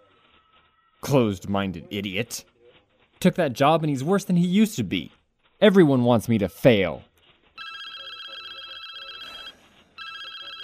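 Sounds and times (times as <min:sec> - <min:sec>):
speech: 0:01.1 - 0:02.5, 0:03.2 - 0:07.1
telephone ringing with a shrill electronic trill: 0:07.6 - 0:10.6.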